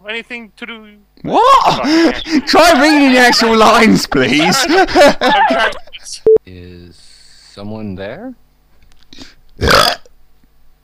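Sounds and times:
speech: 0.0 - 6.7, 7.6 - 8.4
laughter: 1.7 - 6.2
loud burp: 9.6 - 10.1.

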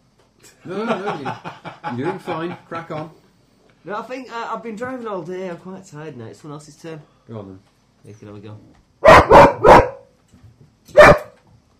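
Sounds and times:
laughter: 0.6 - 3.1
speech: 0.6 - 3.2, 3.8 - 9.7
dog barking while digging under something: 9.0 - 10.1, 10.9 - 11.4.

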